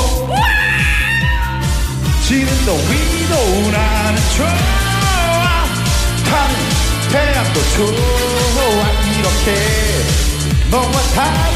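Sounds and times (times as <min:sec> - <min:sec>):
live music: 0:00.0 - 0:11.5
concert audience screaming: 0:00.1 - 0:01.9
speech: 0:04.2 - 0:04.8, 0:07.1 - 0:11.5.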